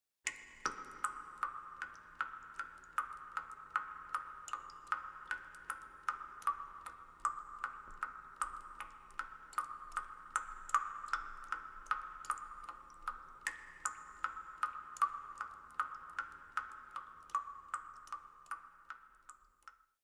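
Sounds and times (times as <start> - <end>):
water dripping: 0.2 - 20.0.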